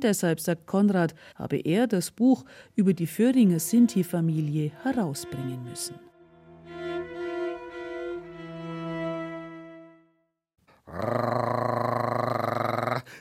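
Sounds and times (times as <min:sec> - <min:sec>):
speech: 0:00.0 - 0:06.1, 0:10.9 - 0:11.2
person imitating dog growling: 0:10.8 - 0:13.1.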